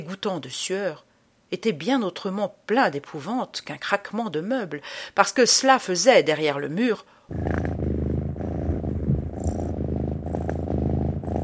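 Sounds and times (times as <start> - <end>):
speech: 0.0 - 7.7
cat purring: 7.3 - 11.4.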